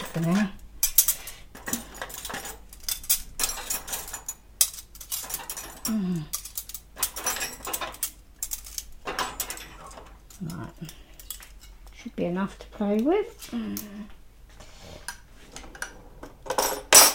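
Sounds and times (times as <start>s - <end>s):
cutlery clinking, a spoon stuck through a fork: 0.0s - 11.8s, 16.5s - 17.1s
speech: 0.2s - 0.6s, 12.3s - 14.2s.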